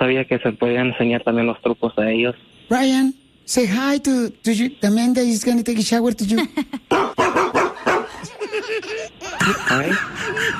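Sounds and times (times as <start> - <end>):
speech: 0.0 - 7.6, 8.3 - 10.5
dog barking: 6.9 - 8.2
laughter: 8.1 - 10.5.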